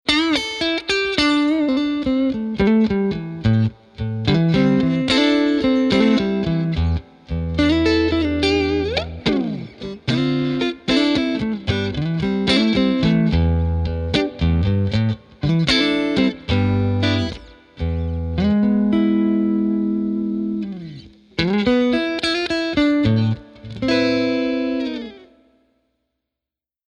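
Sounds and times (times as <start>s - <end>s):
Fender Pro Reverb guitar amplifier: 0.1s - 25.8s.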